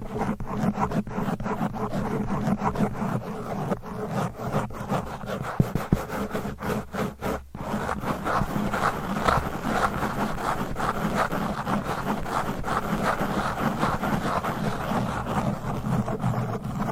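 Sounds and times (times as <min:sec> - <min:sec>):
fast aggressive scratching and rubbing against a microphone: 0:00.0 - 0:16.9.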